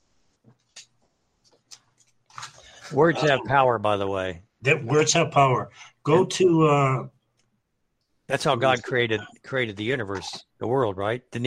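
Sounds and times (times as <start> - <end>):
paper rustling as it is picked up: 1.4 - 3.1
speech: 2.9 - 7.2, 8.3 - 11.4.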